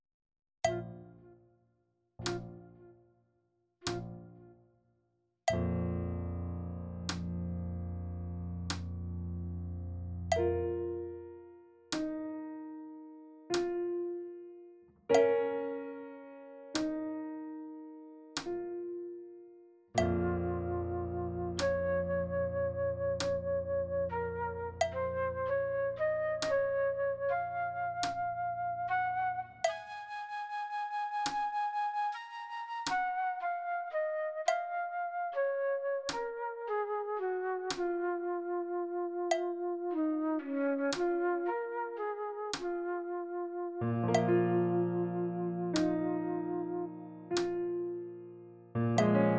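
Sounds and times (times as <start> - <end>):
slow piano practice playback: 2.2 - 3.0, 3.9 - 4.7, 5.5 - 49.3
slow flute practice playback: 20.0 - 47.8.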